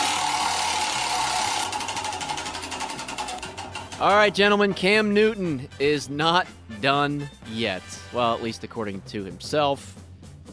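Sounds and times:
spinning prize wheel clicking: 0.0 - 4.8
speech: 4.0 - 10.0.

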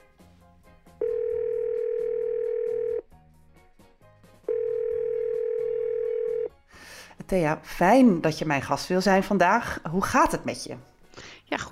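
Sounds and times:
telephone ringing tone while calling someone: 1.0 - 3.0, 4.5 - 6.5
speech: 7.3 - 10.9, 11.5 - 11.7.

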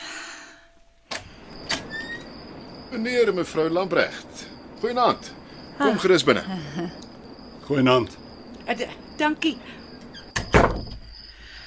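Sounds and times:
speech: 2.9 - 7.0, 7.7 - 9.8
door being opened in a home: 10.2 - 11.1.

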